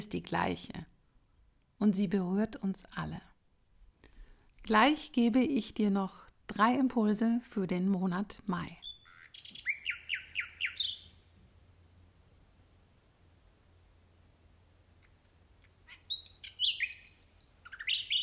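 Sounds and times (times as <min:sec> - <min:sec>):
speech: 0:00.0 - 0:00.9, 0:01.8 - 0:03.3, 0:04.6 - 0:09.7
faint steady hum: 0:00.0 - 0:18.2
several birds singing in high chirps and trills: 0:08.8 - 0:11.2, 0:15.9 - 0:18.2.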